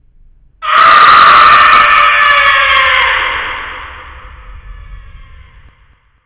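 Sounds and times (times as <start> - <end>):
person screaming: 0.6 - 4.1.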